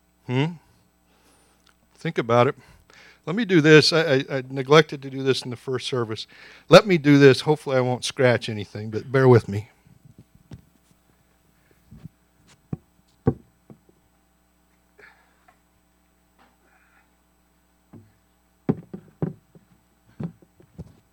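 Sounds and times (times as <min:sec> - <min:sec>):
speech: 0:00.3 - 0:00.6, 0:02.0 - 0:09.7
chair lifted and set down on a wooden podium: 0:12.7 - 0:13.8, 0:17.9 - 0:21.0
knocks and thumps: 0:12.7 - 0:14.0, 0:17.9 - 0:21.1.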